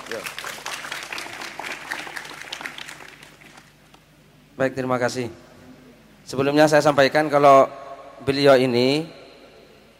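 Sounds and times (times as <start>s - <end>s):
audience applause at a religious gathering: 0.0s - 3.8s
speech: 0.1s - 0.5s, 4.6s - 5.5s, 6.3s - 9.2s.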